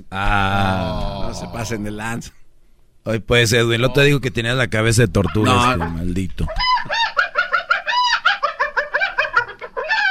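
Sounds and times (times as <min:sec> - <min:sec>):
speech: 0:00.1 - 0:02.4, 0:03.0 - 0:06.7
hen-like clucking calls with a bark-like edge: 0:05.2 - 0:10.0.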